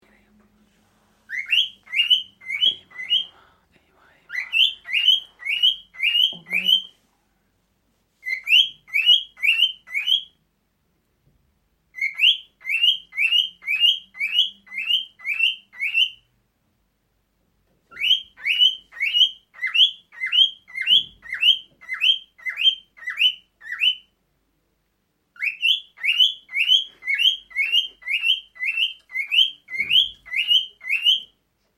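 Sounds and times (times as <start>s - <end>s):
male cockatiel courtship song: 1.3s - 3.4s, 4.1s - 7.0s, 8.2s - 10.4s, 11.9s - 16.3s, 17.9s - 24.2s, 25.4s - 31.4s.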